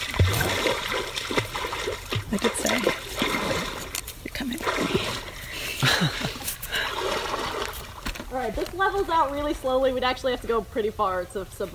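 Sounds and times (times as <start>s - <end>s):
low swishing water surges: 0.0s - 8.2s
water sloshing and splashing as people wade in: 0.0s - 9.4s
speech: 6.0s - 6.3s, 8.5s - 11.7s.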